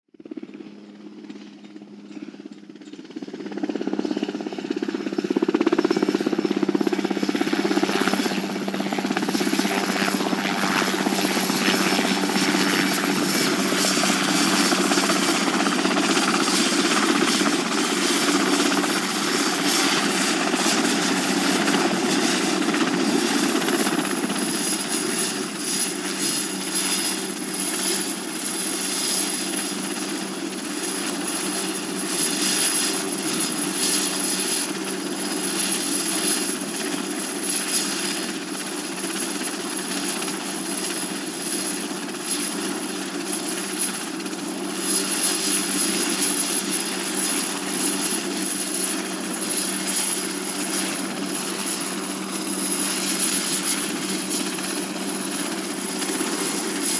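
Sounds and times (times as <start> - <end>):
helicopter approaching for landing: 0.1 - 56.9.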